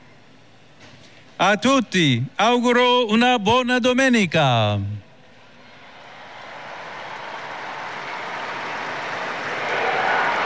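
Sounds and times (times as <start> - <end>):
speech: 1.4 - 5.0
large crowd applauding outdoors in a large square: 5.7 - 10.4.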